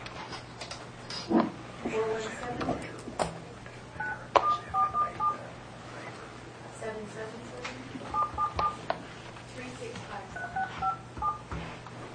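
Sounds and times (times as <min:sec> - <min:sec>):
low hum: 0:00.0 - 0:12.1
faint movement noise: 0:01.6 - 0:12.1
telephone keypad tones dialing a phone number: 0:04.0 - 0:05.4, 0:08.1 - 0:08.8, 0:10.4 - 0:11.5.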